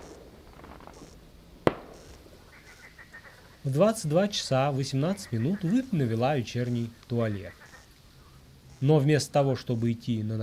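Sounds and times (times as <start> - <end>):
quiet hissy outdoor background at night: 0.0 - 10.4
distant gunshot-like bang outdoors at night: 1.6 - 2.2
speech: 3.6 - 7.6, 8.8 - 10.4.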